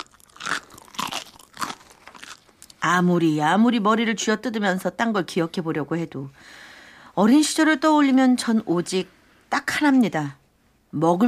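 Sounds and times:
crunchy chewing of a raw onion: 0:00.0 - 0:02.8
speech: 0:02.8 - 0:11.2.

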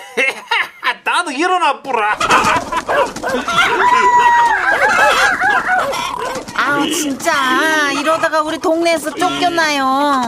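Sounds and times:
laughter: 0:00.0 - 0:01.0, 0:01.9 - 0:09.8
speech: 0:01.1 - 0:04.6, 0:06.7 - 0:10.2
dogs barking across a rural village at night: 0:02.2 - 0:10.2
roosters crowing across a rural village at night: 0:02.2 - 0:10.2.

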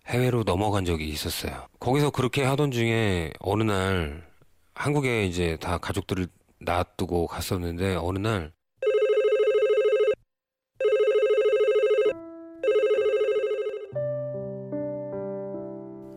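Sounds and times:
speech: 0:00.1 - 0:08.6
telephone ringing with rapid trilling bursts: 0:08.8 - 0:10.2, 0:10.8 - 0:14.0.

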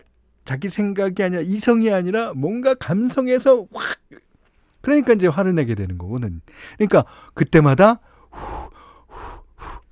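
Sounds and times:
speech: 0:00.5 - 0:04.2, 0:04.8 - 0:08.6
deep breathy exhales demonstrating a breathing exercise: 0:08.1 - 0:09.9.

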